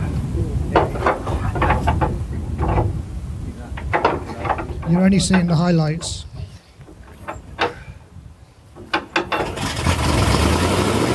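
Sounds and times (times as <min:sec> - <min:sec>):
sharp knocks and clatters: 0:00.7 - 0:03.0, 0:03.8 - 0:07.8, 0:08.8 - 0:09.8
speech: 0:04.9 - 0:06.3
engine cranking and starting after petrol poured down its carburetor: 0:09.2 - 0:11.1.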